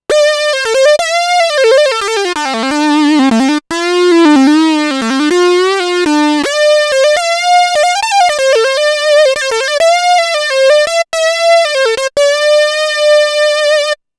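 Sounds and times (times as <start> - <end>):
Minimoog Voyager synth lead: 0.0 - 14.0.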